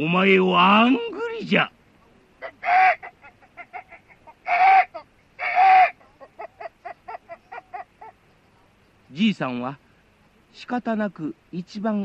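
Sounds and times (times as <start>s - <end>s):
speech: 0.0s - 1.8s, 9.1s - 9.8s, 10.5s - 12.0s
chicken clucking: 2.4s - 8.8s.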